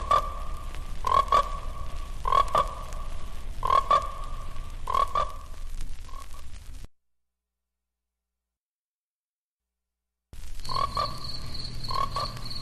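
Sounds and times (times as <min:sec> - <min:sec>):
frogs croaking: 0:00.0 - 0:06.4, 0:10.4 - 0:12.6.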